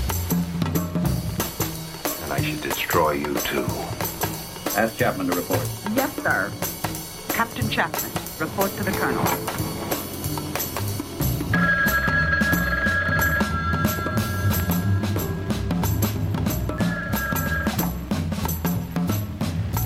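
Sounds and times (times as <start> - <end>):
music: 0.0 - 19.8
speech: 2.4 - 4.1, 4.8 - 6.8, 7.4 - 9.7
telephone ringing: 8.5 - 10.5, 11.5 - 15.5, 16.7 - 17.9.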